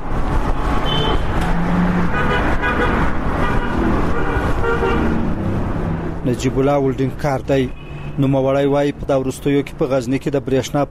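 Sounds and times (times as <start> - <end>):
cars passing on a main city highway: 0.0 - 10.8
car horn toots: 0.8 - 1.4, 2.1 - 5.2
speech: 6.4 - 10.8.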